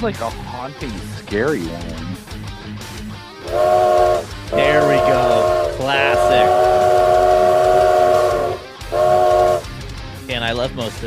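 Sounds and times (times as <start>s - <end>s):
speech: 0.0s - 2.3s, 3.4s - 3.9s, 10.7s - 11.0s
train whistle blasts: 3.4s - 9.8s.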